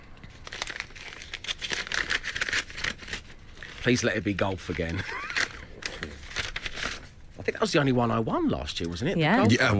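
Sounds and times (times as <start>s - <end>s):
paper envelope holding a team challenge being torn open: 0.3s - 7.2s
speech: 3.8s - 5.3s, 7.6s - 9.7s.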